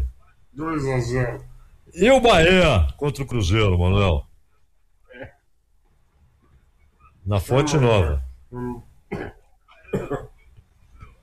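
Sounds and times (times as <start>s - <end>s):
speech: 0.6s - 4.3s, 7.2s - 9.4s
person coughing harshly: 9.1s - 10.4s.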